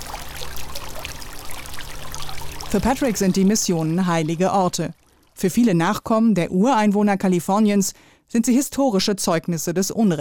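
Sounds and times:
fountain splashing in a historic mission garden: 0.0s - 5.4s
low hum: 0.0s - 8.4s
speech: 2.7s - 10.1s.

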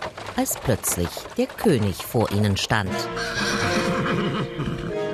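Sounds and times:
horse hooves clip-clopping: 0.0s - 5.0s
speech: 0.4s - 4.8s
exhausted horses whinnying: 3.0s - 5.0s.

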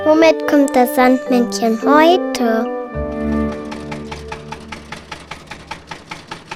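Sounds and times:
speech: 0.2s - 2.8s
tractor engine chugging: 3.2s - 6.5s.

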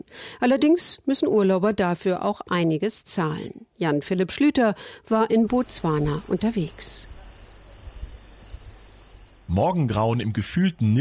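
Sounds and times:
speech: 0.1s - 7.1s, 9.5s - 10.9s
crickets chirping at dawn in delta: 5.2s - 10.9s.

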